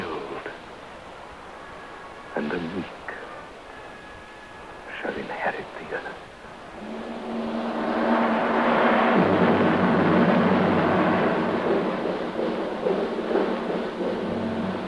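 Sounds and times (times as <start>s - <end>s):
speech: 2.4s - 3.0s
heavy sustained rumbling thunder of an approaching storm: 6.6s - 14.8s.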